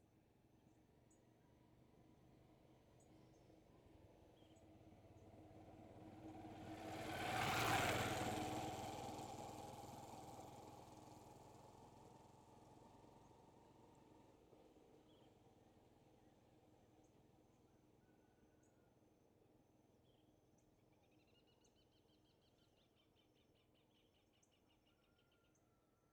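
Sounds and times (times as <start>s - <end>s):
motorcycle passing by on the right in a rural setting: 4.9s - 14.3s.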